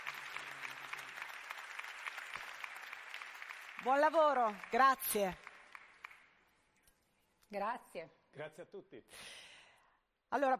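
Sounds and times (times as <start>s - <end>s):
audience clapping: 0.0s - 6.7s
speech: 3.8s - 5.4s, 7.5s - 9.4s, 10.3s - 10.5s.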